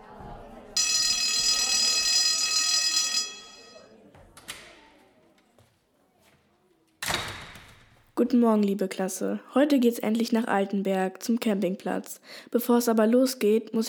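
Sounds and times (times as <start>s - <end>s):
faint murmuring: 0.0s - 6.8s
electric school bell ringing in a classroom: 0.8s - 3.9s
speech: 8.2s - 13.8s.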